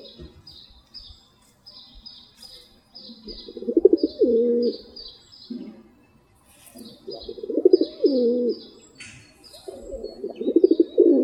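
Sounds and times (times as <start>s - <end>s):
other birds chirping thinly: 0.0s - 11.2s
rock pigeon giving deep rolling coos: 3.1s - 5.9s, 6.8s - 8.8s, 9.5s - 11.2s.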